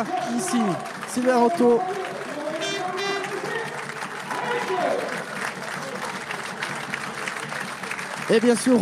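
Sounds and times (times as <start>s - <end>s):
speech: 0.0s - 2.0s, 8.3s - 8.8s
commentator talking: 0.0s - 6.0s, 8.2s - 8.8s
stadium crowd whistles: 0.0s - 6.3s
large stadium crowd clapping and cheering: 0.0s - 8.8s.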